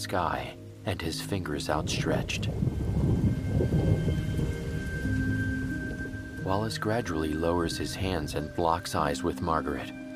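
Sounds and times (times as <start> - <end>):
speech: 0.0 - 2.8, 6.4 - 10.0
heavy rain pouring down steadily: 0.0 - 10.1
low rumble of thunder: 1.6 - 6.5.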